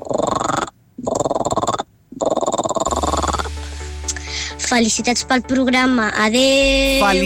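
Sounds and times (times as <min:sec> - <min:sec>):
human voice imitating a frog croak: 0:00.0 - 0:03.5
speech: 0:04.7 - 0:07.2.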